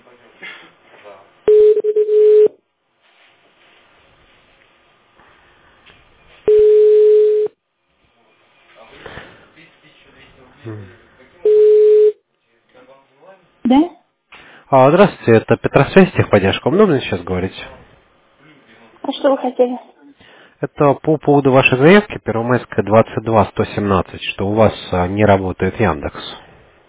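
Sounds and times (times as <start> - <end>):
telephone ringback tone beeps during an outgoing call: 1.5 - 2.5, 6.5 - 7.5, 11.5 - 12.2
speech: 14.7 - 17.8, 19.2 - 19.9, 20.6 - 26.4.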